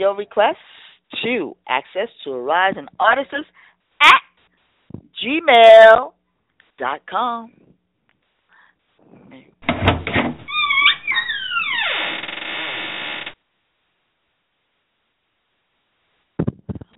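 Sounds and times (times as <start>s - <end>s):
speech: 0.0s - 4.3s, 4.9s - 6.2s, 6.8s - 7.7s
boat opening sound effect, creaking with gliding falling squeals: 10.4s - 13.4s.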